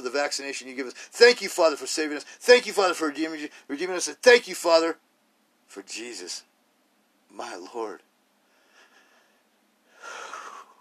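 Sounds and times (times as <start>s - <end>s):
speech: 0.1s - 5.1s, 5.7s - 6.5s, 7.3s - 8.1s
soft breathing: 8.4s - 10.7s.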